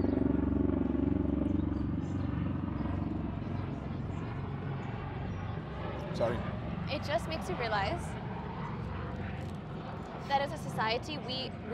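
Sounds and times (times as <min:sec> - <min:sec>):
aircraft engine drone passing overhead: 0:00.0 - 0:11.7
speech: 0:06.2 - 0:08.3, 0:10.3 - 0:11.7.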